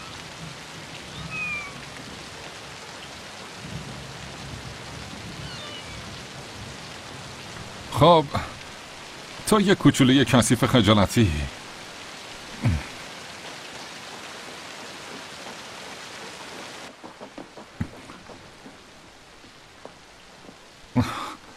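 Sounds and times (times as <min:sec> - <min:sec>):
steady rain falling: 0:00.0 - 0:21.5
speech: 0:08.0 - 0:08.5, 0:09.5 - 0:11.6
loud knocks: 0:16.9 - 0:19.0.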